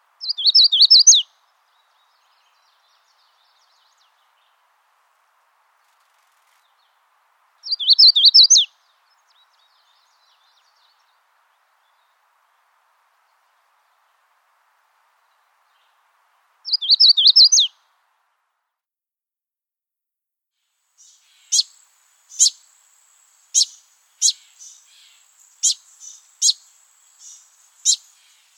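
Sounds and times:
Magnolia Warbler: 0.2s - 4.5s, 7.6s - 11.2s, 16.7s - 17.7s, 21.0s - 28.5s.

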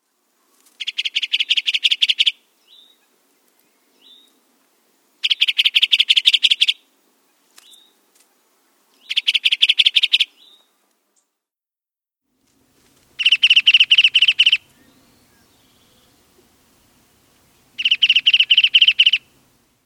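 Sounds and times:
bridled titmouse calling: 0.8s - 3.0s, 5.2s - 6.8s, 9.0s - 10.3s, 13.2s - 16.0s, 17.8s - 19.3s.

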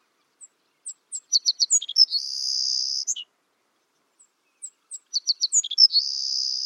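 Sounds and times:
Savannah sparrow song with buzzy trill: 0.4s - 3.3s, 4.6s - 6.6s.

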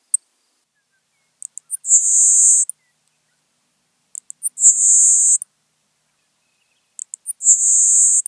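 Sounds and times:
LeContes sparrow: 0.1s - 3.5s, 4.1s - 5.5s, 6.0s - 8.2s.

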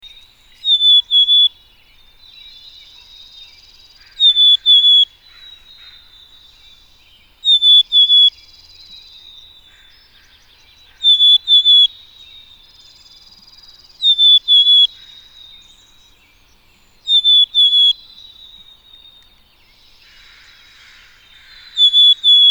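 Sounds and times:
black-capped chickadee Poecile atricapillus occidentalis calling: 0.0s - 22.5s.

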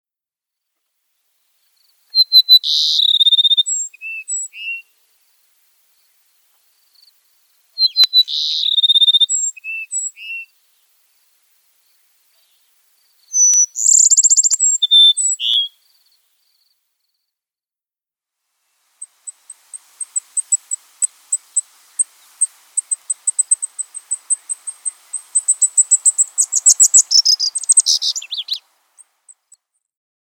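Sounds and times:
Cassin's sparrow singing: 2.1s - 4.8s, 7.8s - 10.5s, 12.3s - 16.2s, 19.0s - 29.6s.

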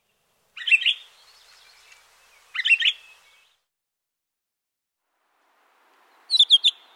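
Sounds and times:
pine grosbeak calling with whistled buzzy notes: 0.6s - 3.5s, 6.2s - 6.9s.

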